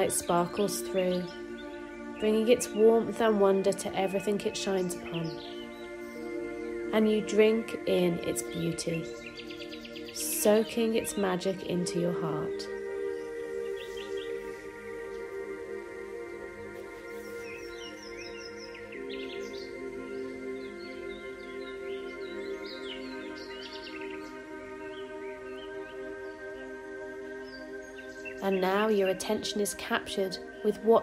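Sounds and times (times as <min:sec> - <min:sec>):
speech: 0:00.0 - 0:01.4, 0:02.2 - 0:05.6, 0:06.9 - 0:09.2, 0:10.2 - 0:12.8, 0:28.5 - 0:31.0
birds chirping and trilling: 0:00.0 - 0:31.0
steady sustained ambient music drone: 0:00.0 - 0:31.0.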